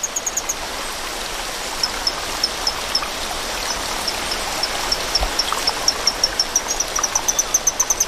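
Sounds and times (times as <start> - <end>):
stream water rushing: 0.0 - 8.0.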